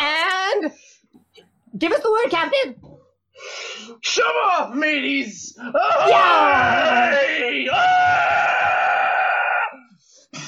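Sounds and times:
speech: 1.8s - 2.8s, 3.4s - 8.5s
several people screaming while rolling down a hill: 5.8s - 9.9s.

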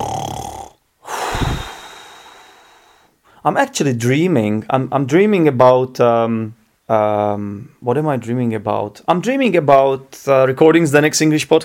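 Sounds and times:
voice imitating snoring: 0.0s - 2.5s
speech: 3.4s - 11.6s.

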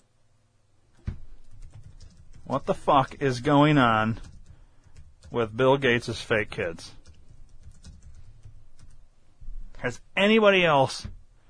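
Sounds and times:
fingers typing a search on a computer keyboard: 1.1s - 9.0s
speech: 2.5s - 4.3s, 5.3s - 7.0s, 9.8s - 11.2s.

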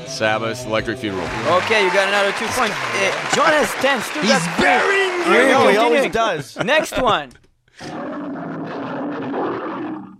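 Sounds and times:
speech: 0.1s - 8.0s
lion roaring: 7.8s - 10.1s.

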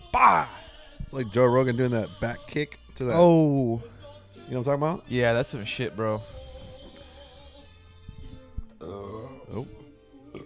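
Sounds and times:
speech: 0.2s - 6.4s, 8.9s - 9.8s
croaking burp: 8.8s - 10.4s.

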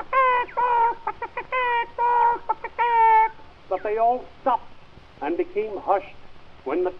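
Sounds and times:
person imitating chickens cackling with their voice: 0.0s - 4.2s
speech: 3.9s - 6.9s.

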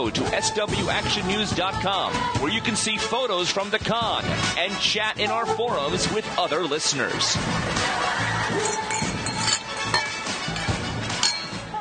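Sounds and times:
speech: 0.0s - 8.2s
laughter: 7.6s - 9.0s
champagne glasses clinking in a toast: 8.5s - 11.7s.

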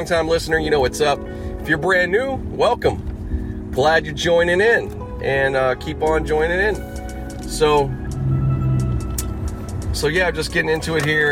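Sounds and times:
speech: 0.0s - 3.1s, 3.7s - 6.9s, 7.5s - 8.0s, 10.0s - 11.3s
car engine and road drone heard from inside the cabin: 2.3s - 11.3s.

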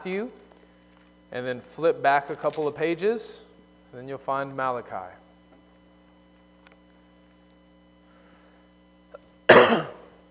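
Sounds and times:
speech: 0.0s - 0.4s, 1.3s - 5.2s
faint breath: 8.0s - 8.8s
sharp cough from a speaker about to give a sermon: 9.5s - 10.2s.

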